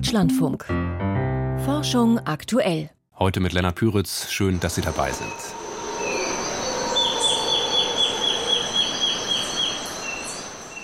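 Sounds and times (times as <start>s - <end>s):
speech: 0.0s - 1.0s, 1.6s - 5.7s
hissing forest ambience in Ecuador: 4.2s - 10.8s
faint high bird calls in an Ecuadorian forest: 4.6s - 10.8s
bird whistling rapid clear notes in an Ecuadorian forest: 5.2s - 10.3s.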